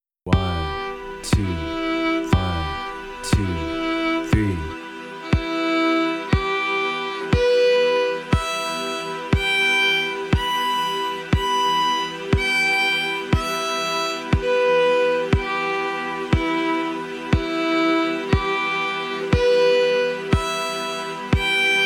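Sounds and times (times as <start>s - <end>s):
fiddle playing E minor triads with single bow: 0.3s - 21.8s.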